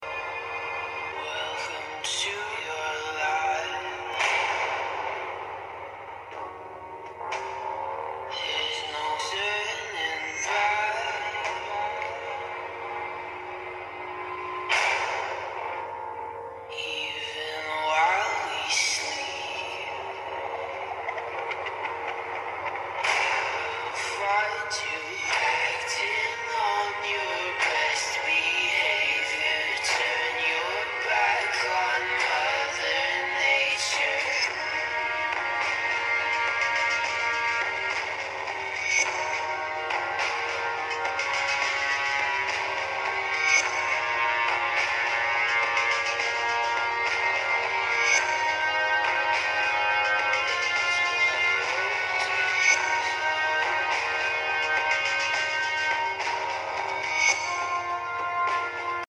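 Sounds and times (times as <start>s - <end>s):
speaker test sample with Dolby enabled: 0.0s - 59.0s.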